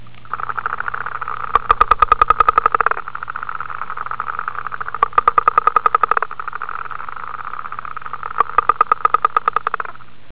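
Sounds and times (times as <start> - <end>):
guttural toad frog: 0.0 - 10.3.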